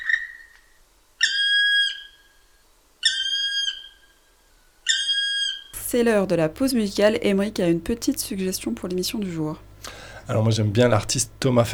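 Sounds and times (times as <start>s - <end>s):
Black Woodpecker calling with long plaintive ringing notes: 1.2s - 2.4s, 3.0s - 4.2s, 4.8s - 5.7s
speech: 5.9s - 9.7s, 10.3s - 11.7s.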